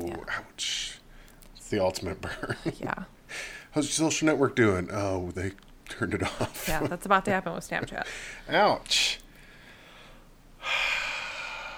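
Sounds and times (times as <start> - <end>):
speech: 0.2 - 0.9, 1.7 - 9.2
heavy breath pushed into a microphone in Washington D.C.: 3.3 - 3.8, 8.0 - 8.5, 9.4 - 11.7.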